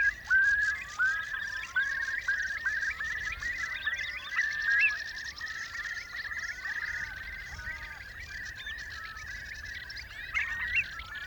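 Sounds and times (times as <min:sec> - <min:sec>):
curlew long bubbling trilled calls with rising whistles: 0:00.0 - 0:11.2.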